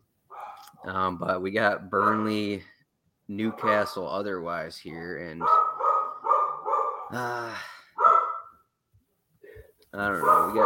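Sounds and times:
dog barking: 0:00.3 - 0:00.9, 0:02.0 - 0:02.4, 0:03.4 - 0:04.1, 0:05.4 - 0:07.2, 0:08.0 - 0:08.6, 0:10.1 - 0:10.6
speech: 0:00.8 - 0:05.6, 0:07.1 - 0:07.8, 0:09.9 - 0:10.6.

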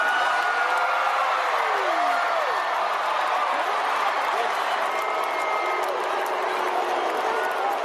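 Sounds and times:
huge concert crowd cheering and yelling: 0:00.0 - 0:07.8.

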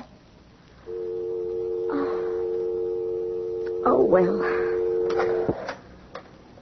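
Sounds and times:
telephone dial tone: 0:00.9 - 0:05.8
speech: 0:04.1 - 0:04.7.

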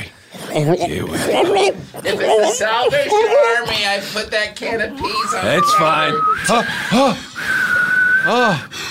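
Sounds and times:
speech: 0:00.6 - 0:07.6, 0:08.2 - 0:08.9
person whistling one long clear note: 0:05.2 - 0:08.7.

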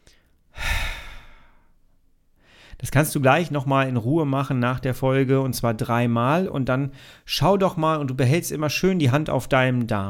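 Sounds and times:
long deep exhale through the mouth during a breathing exercise: 0:00.5 - 0:01.7
speech: 0:02.8 - 0:10.0.

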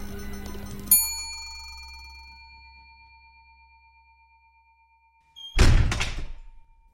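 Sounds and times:
bright chime: 0:00.0 - 0:05.6
heavy doors slamming shut with a rattling thud: 0:05.6 - 0:06.6.

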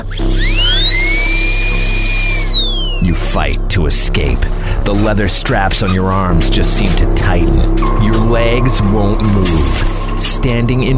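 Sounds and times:
dental drill whirring: 0:00.0 - 0:03.2
speech: 0:03.4 - 0:10.9.

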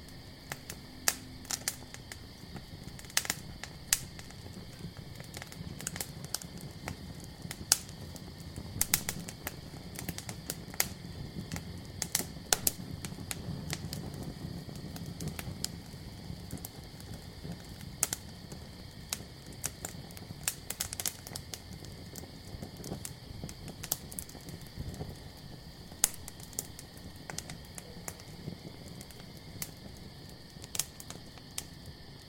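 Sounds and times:
campfire crackling and popping: 0:00.0 - 0:32.2
crickets chirping: 0:00.0 - 0:32.2.

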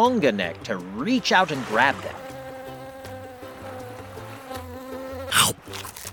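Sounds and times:
speech: 0:00.0 - 0:02.2
insects buzzing: 0:01.6 - 0:05.6.

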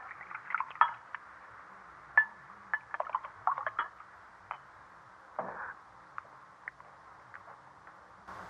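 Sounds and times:
wine gurgling as it is poured into a glass: 0:00.0 - 0:01.1, 0:02.8 - 0:04.0
glasses clinking: 0:00.5 - 0:01.1, 0:02.2 - 0:04.7.

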